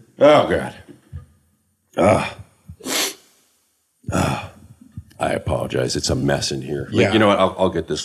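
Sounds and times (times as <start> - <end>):
speech: 0.2 - 0.8, 2.0 - 3.0, 5.2 - 8.0
person sneezing: 2.0 - 3.2, 4.1 - 4.6
heavy breath or sniff: 2.8 - 3.3.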